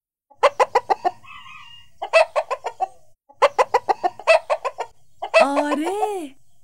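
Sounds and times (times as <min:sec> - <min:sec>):
hen clucking: 0:00.3 - 0:06.4.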